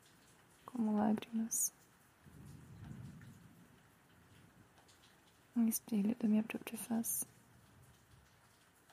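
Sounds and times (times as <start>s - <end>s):
steady rain falling outside at night: 0.0s - 8.9s
speech: 0.8s - 1.8s, 5.6s - 7.3s
deep roll of thunder: 2.2s - 5.3s.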